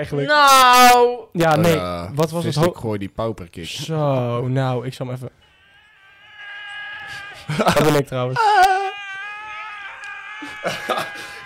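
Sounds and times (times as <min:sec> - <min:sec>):
speech: 0:00.0 - 0:05.4, 0:07.5 - 0:08.8, 0:10.4 - 0:11.4
people screaming in a phone recording: 0:05.4 - 0:11.4
laughter: 0:05.6 - 0:11.4.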